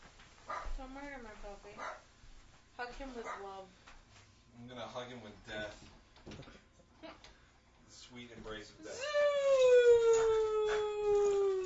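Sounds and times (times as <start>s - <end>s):
speech: 0.8s - 2.1s, 2.8s - 3.8s, 4.6s - 7.3s, 7.9s - 11.4s
puppy whining cry: 8.9s - 11.6s.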